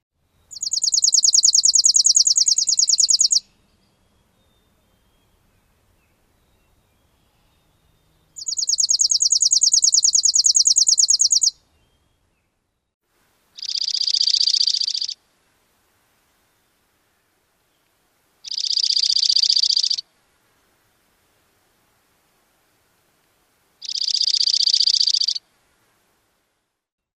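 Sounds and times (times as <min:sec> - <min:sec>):
chipping sparrow singing a trilling song: 0:00.5 - 0:12.1, 0:13.6 - 0:15.2, 0:18.4 - 0:20.0, 0:23.8 - 0:25.4.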